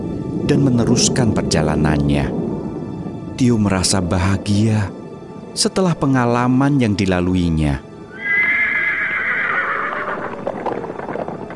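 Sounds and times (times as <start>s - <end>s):
speech: 0.5s - 2.4s, 3.4s - 5.0s, 5.6s - 7.8s
black horse whinnying: 8.1s - 11.2s.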